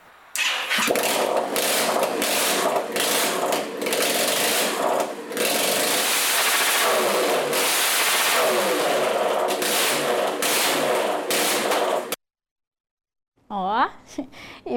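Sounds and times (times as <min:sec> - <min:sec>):
student team's competition racing car engine roaring: 0:00.7 - 0:12.2.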